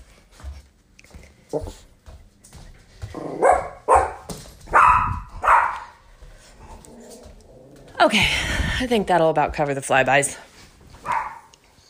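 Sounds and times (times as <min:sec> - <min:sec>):
speech: 0:01.5 - 0:01.9, 0:08.0 - 0:10.5
dog barking: 0:03.3 - 0:06.0, 0:11.0 - 0:11.5.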